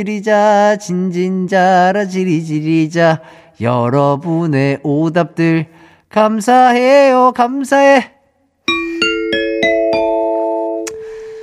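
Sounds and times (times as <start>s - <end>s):
speech: 0.0s - 8.8s
bright ding-dong-dang correct answer chime: 8.7s - 11.4s.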